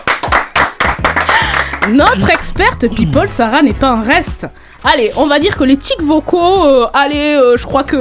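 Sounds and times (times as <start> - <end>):
applause sound effect: 0.0 - 2.6
speech: 1.9 - 8.0.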